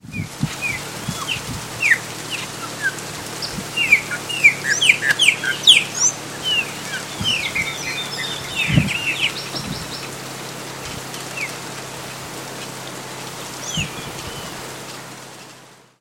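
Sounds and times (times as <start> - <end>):
Gnorimopsar chopi: 0.2 - 10.2, 13.4 - 14.6.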